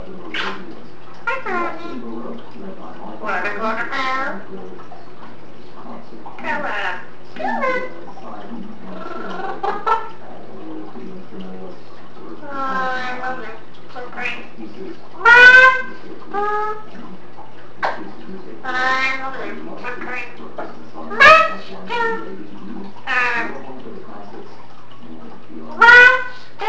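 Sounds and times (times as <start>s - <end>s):
eclectus parrot babbling: 0.0s - 2.0s, 3.0s - 4.5s, 6.4s - 8.1s, 8.7s - 10.2s, 12.4s - 14.6s, 15.2s - 17.0s, 18.6s - 22.4s, 23.0s - 23.7s, 25.8s - 26.6s.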